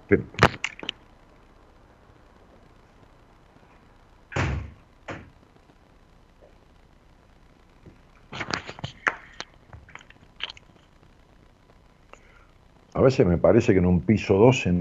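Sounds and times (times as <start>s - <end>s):
faint steady hum: 0.0s - 14.8s
speech: 0.1s - 0.4s, 13.1s - 14.8s
window on a 12th floor being handled and shut: 4.4s - 5.3s.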